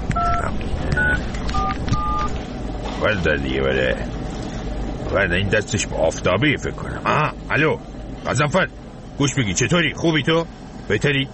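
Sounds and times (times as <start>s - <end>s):
touch-tone keypad beeps dialing a telephone number: 0.1s - 2.4s
speech: 3.0s - 4.2s, 5.1s - 11.3s.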